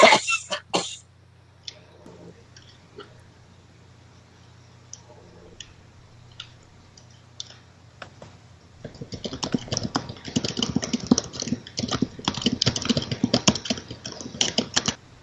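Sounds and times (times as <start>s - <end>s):
hard typing on a computer keyboard: 8.8s - 15.0s.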